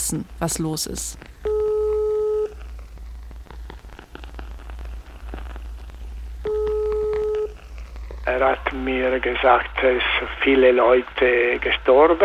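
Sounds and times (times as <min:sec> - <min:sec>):
noise: 0:00.0 - 0:12.2
speech: 0:00.1 - 0:01.4, 0:08.4 - 0:12.2
telephone tones as a call is placed to a small mountain hut on the Marmolada: 0:01.4 - 0:02.6, 0:06.4 - 0:07.6.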